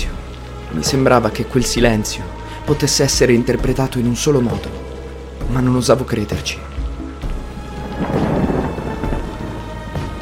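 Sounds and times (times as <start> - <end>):
heavy rain pouring steadily: 0.0 - 10.2
speech: 0.7 - 6.7
deep rumble of thunder: 6.8 - 10.2.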